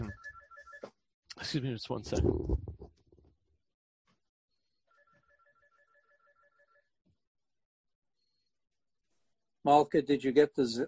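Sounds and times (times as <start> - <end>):
mobile phone ringing with electronic melody of pulsed tones: 0.0 - 1.0, 4.9 - 7.0
speech: 1.4 - 2.6, 9.7 - 10.8.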